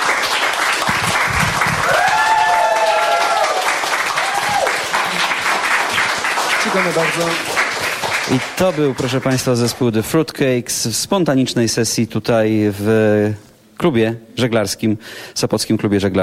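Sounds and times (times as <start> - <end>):
audience applause for a rock band at a sailing club: 0.0 - 9.9
audience whoops and raised voices: 1.6 - 4.9
speech: 6.7 - 7.5, 8.3 - 16.2.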